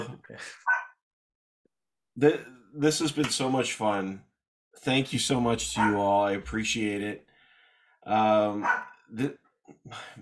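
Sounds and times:
dog barking: 0:00.7 - 0:01.0, 0:05.8 - 0:06.0, 0:08.6 - 0:09.0
speech: 0:02.2 - 0:07.3, 0:08.0 - 0:10.2.

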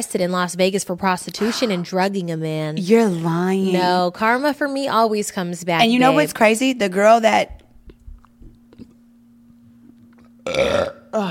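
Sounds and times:
speech: 0:00.0 - 0:07.6, 0:10.4 - 0:11.2
person burping: 0:10.4 - 0:11.2.

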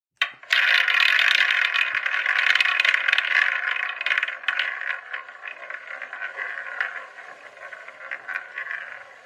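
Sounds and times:
specially built game-show wheel spinning and rattling: 0:00.2 - 0:09.2.

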